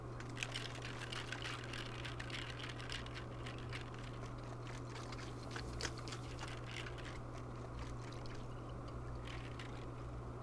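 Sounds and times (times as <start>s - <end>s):
glass shaker: 0.2s - 10.2s.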